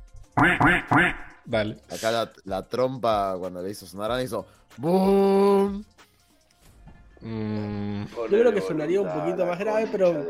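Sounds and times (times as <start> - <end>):
person imitating duck quacks with nasal quacks: 0.4 - 1.4
speech: 0.4 - 6.0, 7.2 - 10.2.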